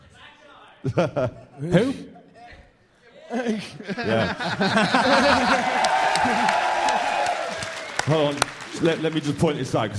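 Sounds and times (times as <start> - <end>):
speech: 0.8 - 2.2, 3.3 - 6.7, 8.1 - 9.9
people laughing: 0.8 - 6.8
crowd at a prize-giving cheering: 4.2 - 9.9
scattered whoops: 5.4 - 8.0.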